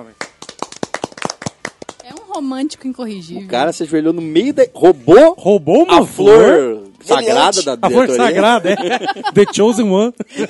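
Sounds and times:
speech: 0.0s - 0.3s, 2.4s - 10.4s
brisk uneven hand claps from a few people: 0.0s - 2.5s
laughter: 7.9s - 10.4s.

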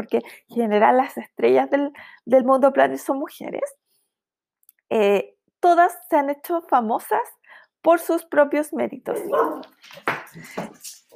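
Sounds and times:
speech: 0.0s - 3.8s, 4.9s - 11.1s
dogs barking: 9.1s - 9.8s.

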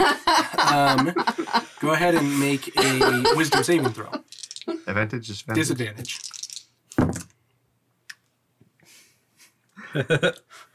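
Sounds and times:
person laughing: 0.0s - 4.8s
speech: 0.7s - 4.2s, 4.9s - 6.3s, 10.0s - 10.7s
twenty-sided dice rolling across a tabletop in a role-playing game: 4.3s - 4.7s, 6.0s - 7.3s.

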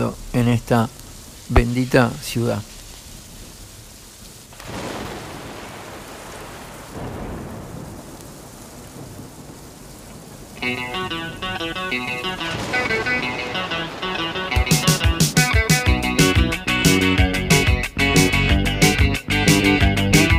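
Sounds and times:
low rumbling thunder: 0.0s - 3.7s, 4.6s - 15.6s
steady rain pouring in Montevideo: 0.0s - 20.3s
speech: 0.1s - 2.7s
melodic musical pattern: 10.6s - 20.3s.

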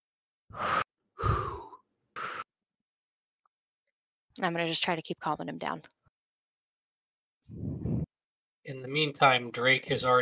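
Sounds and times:
person taking a deep breath in and exhaling: 0.5s - 2.5s, 7.5s - 8.1s
speech: 4.4s - 6.0s, 7.5s - 7.8s, 8.7s - 10.2s.

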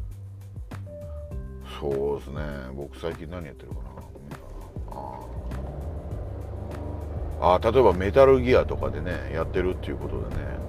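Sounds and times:
speech: 1.7s - 4.2s, 7.4s - 10.6s
car engine rumble inside a moving car: 3.0s - 10.6s
road noise inside a moving car: 3.9s - 10.6s.

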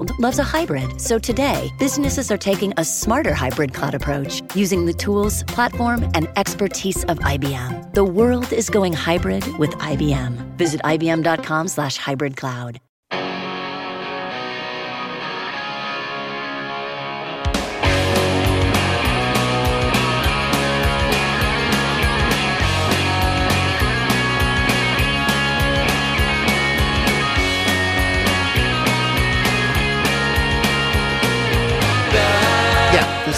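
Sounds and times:
speech: 0.2s - 12.9s
distorted guitars in a punk rock song: 13.1s - 33.3s.

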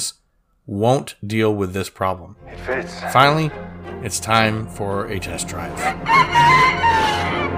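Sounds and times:
speech: 0.0s - 7.5s
creature crowing like a rooster: 5.8s - 7.5s.

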